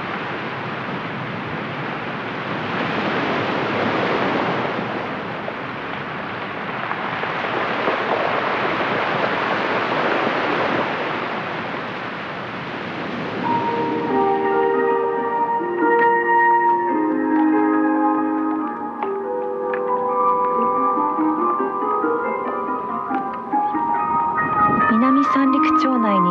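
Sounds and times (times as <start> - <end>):
Pacific Ocean waves crashing between a split rock at a cape tip: 0.0 - 15.1
gentle melody: 13.4 - 26.2.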